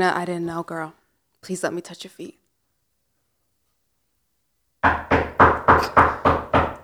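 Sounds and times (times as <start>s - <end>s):
speech: 0.0s - 2.4s, 4.8s - 5.2s
firm knocks on a door: 4.8s - 6.8s.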